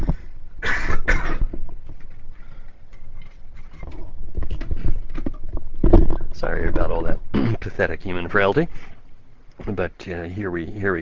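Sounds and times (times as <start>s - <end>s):
person coughing harshly: 0.6s - 1.5s, 7.3s - 7.7s
soft clattering: 1.1s - 9.9s
rustling and handling noises: 1.4s - 9.9s
speech: 6.5s - 8.9s, 9.6s - 10.9s.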